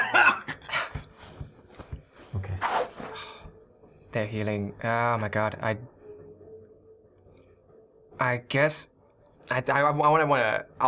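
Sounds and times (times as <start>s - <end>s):
person imitating harsh coughing and hacking: 0.0s - 1.0s
speech: 4.2s - 6.0s, 8.2s - 10.8s.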